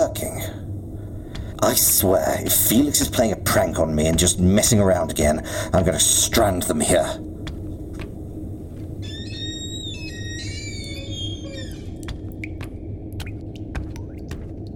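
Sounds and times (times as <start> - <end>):
steady low hum: 0.0 - 14.7
speech: 1.6 - 7.3
squeaky whistling tone: 9.0 - 12.1
water dripping from a faucet: 11.9 - 14.7.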